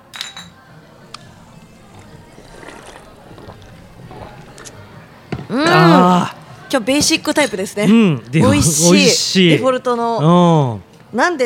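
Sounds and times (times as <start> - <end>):
highball glasses clinking in a toast: 0.0 - 3.9
low murmur and faint voices in a wooden restaurant: 0.0 - 11.4
speech: 5.5 - 11.4.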